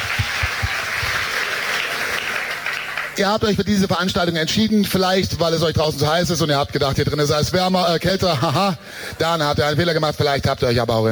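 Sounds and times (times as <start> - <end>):
crowd applauding: 0.0 - 3.7
speech: 3.2 - 11.1.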